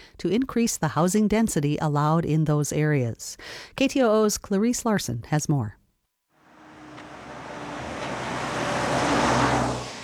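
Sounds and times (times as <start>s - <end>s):
speech: 0.2s - 5.8s
cars zooming past on a highway: 6.4s - 10.0s
steady traffic noise: 6.4s - 10.0s.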